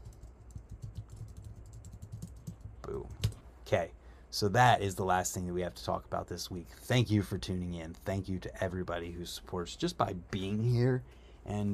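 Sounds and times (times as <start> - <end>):
rapid typing on a computer keyboard: 0.0 - 3.4
speech: 3.7 - 11.7.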